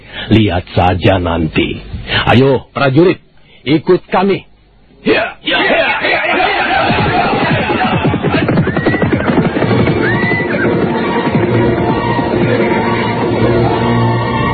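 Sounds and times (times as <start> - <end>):
speech: 0.2 - 5.6
laughter: 5.5 - 9.7
horse hoofbeats: 6.8 - 14.4
horse whinnying: 8.4 - 11.6.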